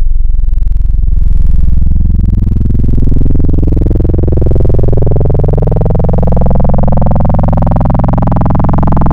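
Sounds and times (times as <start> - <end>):
sine wave modulated wavetable synthesizer tones: 0.1 - 9.1.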